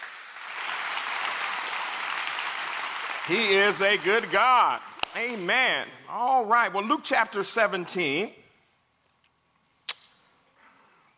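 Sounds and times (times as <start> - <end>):
crowd applauding with many hands clapping: 0.0 - 5.5
speech: 3.3 - 8.4.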